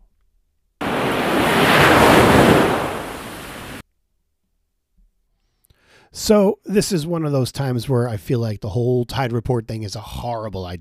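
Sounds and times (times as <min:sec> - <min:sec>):
ocean waves crashing on shore: 0:00.8 - 0:03.8
windy rumble: 0:00.8 - 0:03.8
speech: 0:06.1 - 0:10.7.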